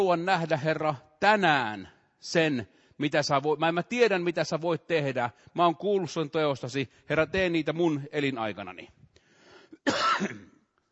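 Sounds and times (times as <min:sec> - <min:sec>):
speech: 0:00.0 - 0:09.0, 0:09.8 - 0:10.5
faint breathy sounds: 0:09.1 - 0:09.8
harsh rasping cough from someone with a lingering cough: 0:09.8 - 0:10.6.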